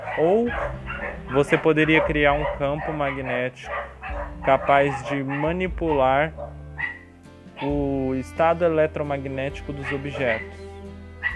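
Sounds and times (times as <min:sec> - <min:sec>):
dogs barking in short sharp yelps: 0:00.0 - 0:07.8, 0:09.7 - 0:10.6, 0:11.2 - 0:11.3
speech: 0:00.2 - 0:06.6, 0:07.6 - 0:10.6.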